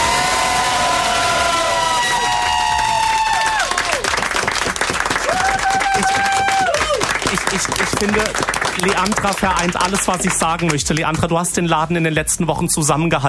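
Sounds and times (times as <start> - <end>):
whooping cheers: 0.0 - 4.4, 5.1 - 7.3
crowd applauding: 0.0 - 11.3
speech: 8.0 - 13.2.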